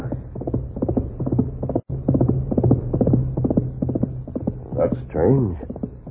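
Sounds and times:
galloping horse hoofbeats: 0:00.0 - 0:06.0
low rumbling hum: 0:00.0 - 0:06.0
speech: 0:05.2 - 0:05.7.

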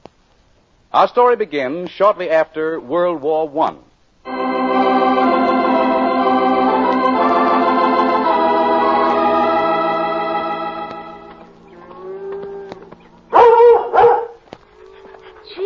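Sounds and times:
speech: 0:00.9 - 0:04.4
sustained orchestral music: 0:04.3 - 0:12.2
dog yelping: 0:12.6 - 0:15.6
dog barking loudly: 0:13.3 - 0:14.4.

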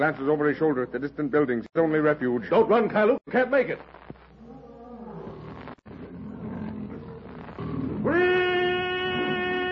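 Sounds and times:
speech: 0:00.0 - 0:04.0
lion roaring during charge: 0:04.4 - 0:09.6
sustained tonal bellowing cry: 0:04.4 - 0:09.7.

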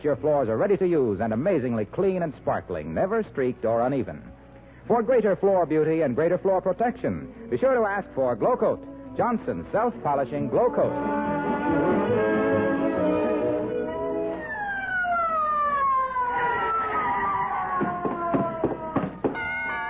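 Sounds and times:
speech: 0:00.0 - 0:12.3
ambulance siren wailing: 0:09.9 - 0:19.8.

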